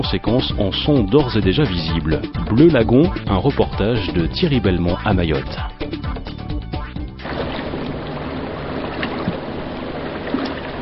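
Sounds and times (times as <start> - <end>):
speech: 0.0 - 6.1
wildlife patrol motorboat engine and water rushing on a lagoon at Mayotte: 7.2 - 10.8.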